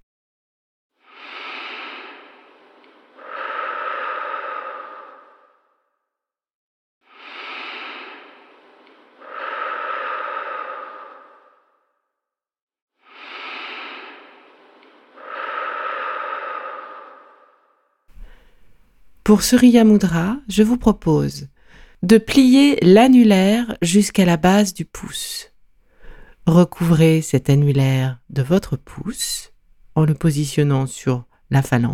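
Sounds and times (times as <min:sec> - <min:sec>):
slow deep breaths during a guided relaxation exercise: 0:01.0 - 0:05.9, 0:07.1 - 0:12.0, 0:13.0 - 0:19.3, 0:21.5 - 0:22.1, 0:25.5 - 0:26.5
speech: 0:19.3 - 0:25.5, 0:26.4 - 0:31.9.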